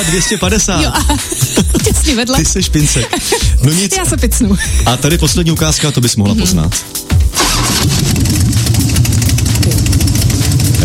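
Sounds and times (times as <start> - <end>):
laughter: 0.0 - 6.7
speech: 0.0 - 8.0
Harley-Davidson motorcycle engine firing up and idling: 7.4 - 10.8.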